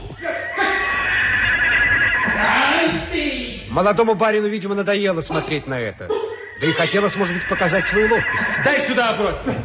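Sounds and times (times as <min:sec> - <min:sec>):
frightened horse neighing: 0:00.2 - 0:02.6, 0:06.2 - 0:09.0
speech: 0:03.8 - 0:09.6.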